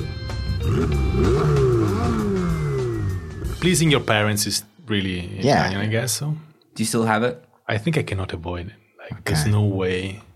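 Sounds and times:
car engine revving: 0.6s - 3.6s
speech: 3.6s - 10.3s.

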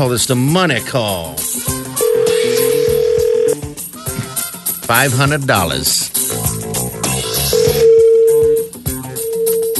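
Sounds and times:
speech: 0.0s - 1.5s, 4.9s - 6.0s
music: 0.0s - 9.7s
telephone dialing tones: 2.0s - 3.6s, 7.6s - 9.7s.

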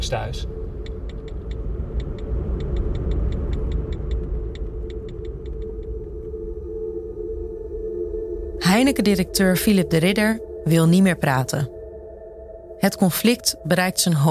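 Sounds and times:
speech: 0.0s - 0.8s, 8.7s - 11.8s, 12.8s - 14.2s
car driving with low engine and road rumble: 0.0s - 6.5s
rapid regular high ticking: 0.8s - 6.0s.

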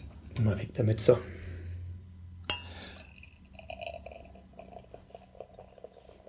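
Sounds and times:
speech: 0.4s - 1.4s
freshly rinsed glass clinking: 2.5s - 6.2s.

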